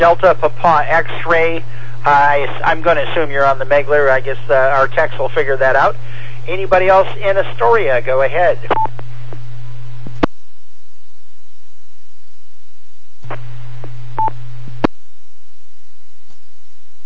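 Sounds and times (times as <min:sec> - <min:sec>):
speech: 0:00.0 - 0:08.8
radio repeater kerchunks with static bursts: 0:00.0 - 0:10.5, 0:13.2 - 0:14.9
low steady hum: 0:00.0 - 0:17.0.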